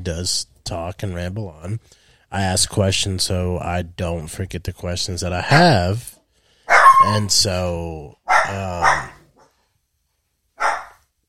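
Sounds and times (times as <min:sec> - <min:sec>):
speech: 0:00.0 - 0:06.2, 0:07.0 - 0:09.2
dogs barking with a slight growling edge: 0:06.7 - 0:07.3, 0:08.3 - 0:09.5, 0:10.6 - 0:11.0.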